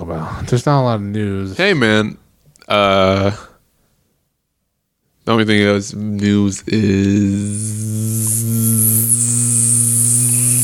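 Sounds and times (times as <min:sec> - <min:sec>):
speech: 0:00.1 - 0:03.5, 0:05.3 - 0:08.6
bee buzzing in the room: 0:07.4 - 0:10.6.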